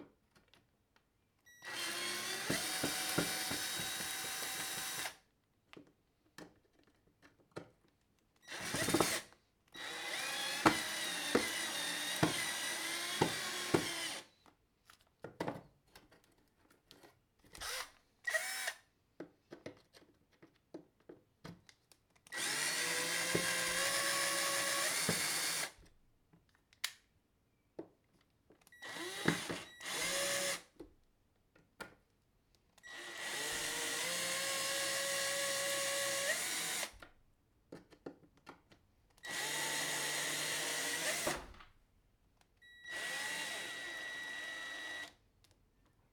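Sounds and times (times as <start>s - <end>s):
cordless screwdriver driving screws: 1.6s - 5.2s, 8.4s - 14.3s, 17.6s - 18.8s, 22.3s - 25.8s, 28.8s - 30.7s, 32.9s - 37.0s, 39.2s - 41.6s, 42.9s - 45.2s.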